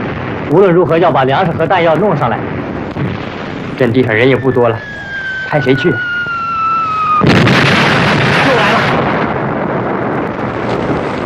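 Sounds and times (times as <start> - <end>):
artillery fire during a battle: 0.0 - 11.2
speech: 0.5 - 2.6, 3.3 - 6.1.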